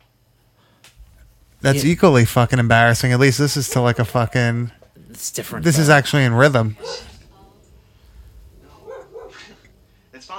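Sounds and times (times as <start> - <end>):
speech: 1.6 - 7.1
dog barking: 6.7 - 7.6, 8.6 - 9.7.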